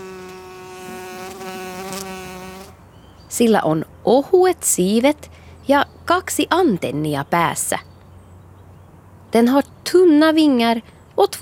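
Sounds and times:
bumblebee buzzing: 0.0 - 2.8
speech: 3.3 - 7.9, 9.3 - 11.4.

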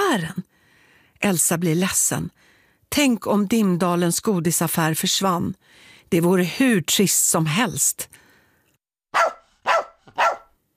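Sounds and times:
speech: 0.1 - 0.5, 1.2 - 8.2
dog barking loudly and shrilly: 9.1 - 10.6.

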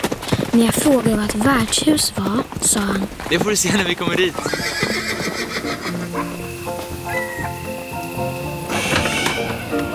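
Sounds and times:
speech: 0.6 - 5.3
steady rain-like hiss: 3.1 - 9.9
horse whinnying during a night ride down to an inn: 4.3 - 6.4, 7.0 - 7.6, 8.7 - 9.9.

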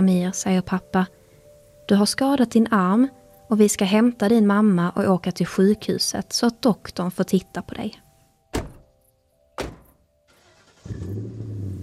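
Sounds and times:
speech: 0.0 - 1.2, 1.9 - 8.0
car door thuds: 8.5 - 8.9, 9.6 - 10.0
car engine starting and running as car drives off: 10.3 - 11.8.

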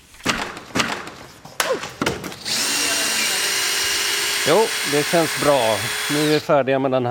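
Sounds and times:
knocks and clatters: 0.2 - 2.4
power tool dismantling an election pavilion: 2.4 - 6.5
speech: 4.5 - 7.0.

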